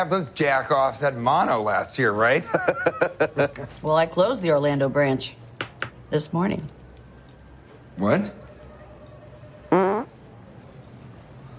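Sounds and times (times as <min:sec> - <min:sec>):
speech: 0:00.0 - 0:05.4, 0:06.1 - 0:06.8, 0:08.0 - 0:08.4
laughter: 0:02.4 - 0:03.7
short loud buzzy fart: 0:09.7 - 0:10.2.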